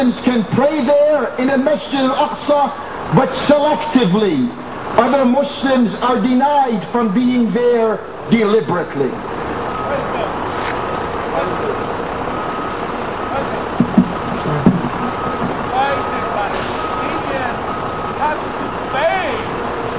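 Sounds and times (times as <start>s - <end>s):
speech: 0.0s - 9.3s
large bus engine rumbling: 0.0s - 19.9s
faint voices murmuring: 12.8s - 19.0s.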